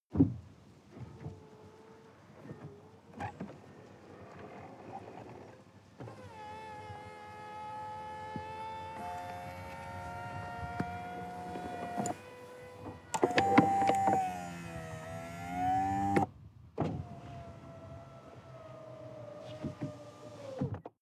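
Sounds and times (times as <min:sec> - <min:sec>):
sports car convertible top closing heard from the interior: 0:06.1 - 0:20.8.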